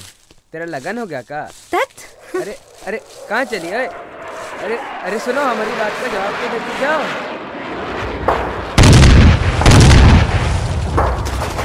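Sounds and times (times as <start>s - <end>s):
speech: 0.5s - 7.3s
homemade bombs exploding: 7.2s - 11.6s
gunfire: 8.3s - 11.6s.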